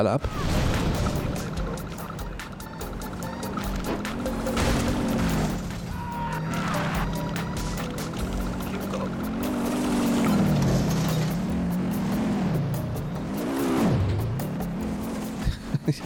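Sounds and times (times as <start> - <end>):
speech: 0.0 - 0.6
video game car engine drone revving: 0.0 - 16.0
laughter: 15.4 - 16.0.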